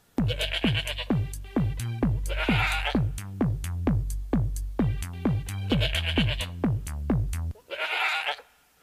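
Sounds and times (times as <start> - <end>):
fast electronic dance beat with thumping bass: 0.1 - 7.5
goat bleating: 0.2 - 1.2, 2.2 - 3.2, 5.6 - 6.6, 7.5 - 8.6.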